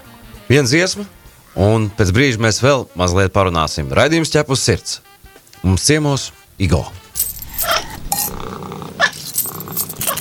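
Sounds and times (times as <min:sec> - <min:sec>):
speech: 0:00.5 - 0:07.0
sharp clinking: 0:07.1 - 0:10.1
cat purring: 0:07.4 - 0:10.1.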